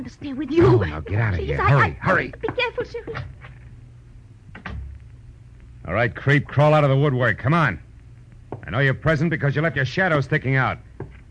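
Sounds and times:
speech: 0:00.0 - 0:03.5, 0:05.8 - 0:07.8, 0:08.5 - 0:10.8
quiet hum: 0:00.0 - 0:11.2
side door opening and closing with a click and low thud: 0:04.5 - 0:05.0.

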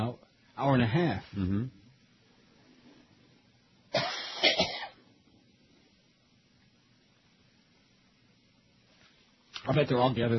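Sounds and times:
speech: 0:00.1 - 0:01.8, 0:09.7 - 0:10.3
person coughing: 0:03.9 - 0:05.0.

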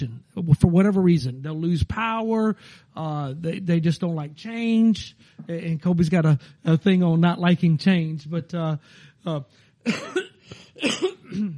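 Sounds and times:
speech: 0:00.0 - 0:11.5
person coughing in harsh throaty bursts: 0:09.9 - 0:11.5.

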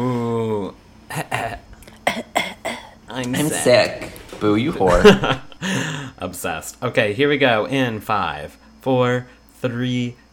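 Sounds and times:
person coughing: 0:01.1 - 0:03.0
speech: 0:03.2 - 0:05.4, 0:06.2 - 0:10.2
laughter: 0:04.8 - 0:06.1.

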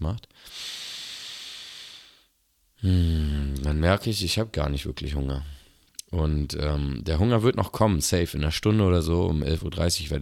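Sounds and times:
speech: 0:00.0 - 0:00.7, 0:02.8 - 0:10.1
deep conscious breath drawn into the belly: 0:00.4 - 0:03.5.

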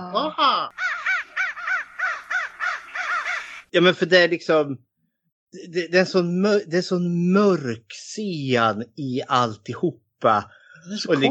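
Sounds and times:
speech: 0:00.0 - 0:00.8, 0:03.7 - 0:04.9, 0:05.5 - 0:11.2
ravens cawing: 0:00.7 - 0:03.7.

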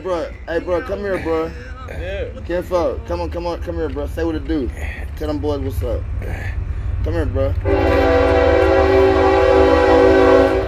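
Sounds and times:
speech: 0:00.0 - 0:09.1
train rumbling past: 0:00.0 - 0:10.6
train horn blaring: 0:07.6 - 0:10.6.

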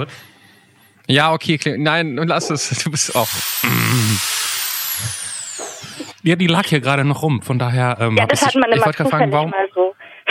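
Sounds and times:
speech: 0:00.0 - 0:00.3, 0:01.1 - 0:04.4, 0:05.0 - 0:05.3, 0:05.9 - 0:09.9
electric drill whirring in a living room: 0:02.6 - 0:06.2.

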